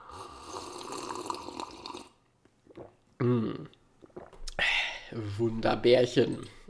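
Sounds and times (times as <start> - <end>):
person slurping and swallowing a drink: 0.2 - 4.6
speech: 3.2 - 3.8, 5.1 - 6.6.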